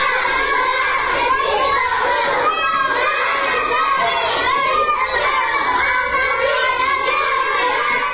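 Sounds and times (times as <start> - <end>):
young children chanting a slogan in unison in a classroom: 0.0 - 8.1.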